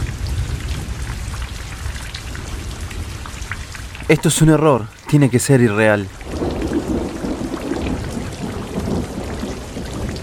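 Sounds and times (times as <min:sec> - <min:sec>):
thunder rumbling: 0:00.0 - 0:03.5, 0:06.2 - 0:10.2
rain falling: 0:00.0 - 0:10.2
speech: 0:04.1 - 0:06.2.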